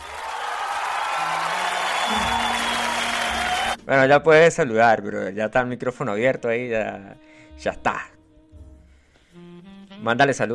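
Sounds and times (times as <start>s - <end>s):
applause from a small group: 0.0s - 3.8s
speech: 3.9s - 8.1s, 10.0s - 10.5s.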